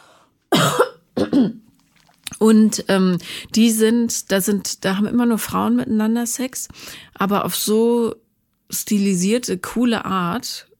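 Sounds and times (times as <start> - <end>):
person clearing throat: 0.5 - 1.6
speech: 1.4 - 1.6, 2.4 - 10.7.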